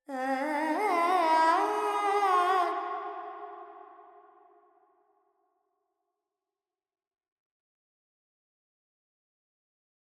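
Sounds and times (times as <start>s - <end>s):
Carnatic female alap singing with reverb: 0.0s - 4.5s.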